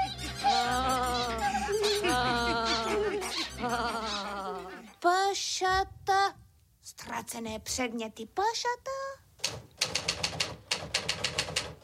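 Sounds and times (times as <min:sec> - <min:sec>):
laughter: 0:00.0 - 0:05.0
speech: 0:07.3 - 0:09.0
typewriter keystrokes: 0:09.4 - 0:11.8.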